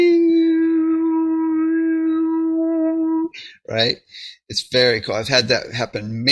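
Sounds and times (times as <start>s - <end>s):
overtone singing drone with bright whistling overtone: 0.0s - 3.4s
speech: 3.7s - 6.3s.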